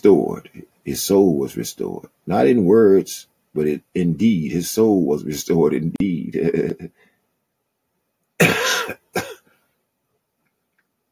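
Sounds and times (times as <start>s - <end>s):
speech: 0.0s - 7.0s
person with a lingering cough coughing: 8.4s - 9.5s.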